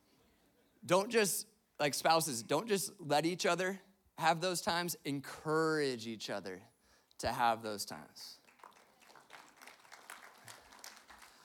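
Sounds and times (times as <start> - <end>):
speech: 0.8 - 8.4
audience applause: 8.4 - 11.4.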